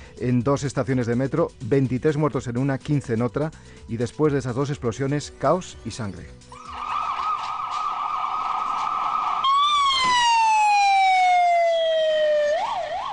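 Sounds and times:
speech: 0.2 - 6.6
ambulance sirens carrying the wounded and dead after metro bombings: 6.5 - 13.1.

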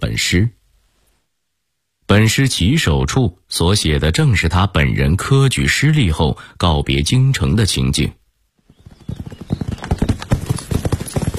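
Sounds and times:
speech: 0.2 - 0.6, 2.1 - 8.2
horse hooves clip-clopping as a rider travels on horseback into open countryside: 8.7 - 11.3.

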